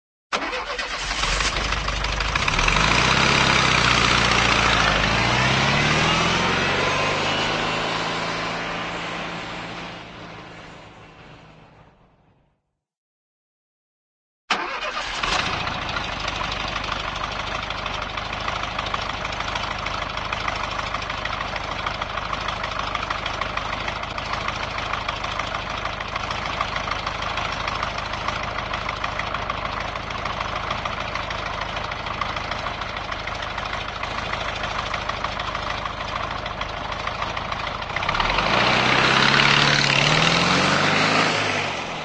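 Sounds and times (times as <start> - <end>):
cartoon Volkswagen car starting and pulling away: 0.3 - 11.9, 14.5 - 42.0.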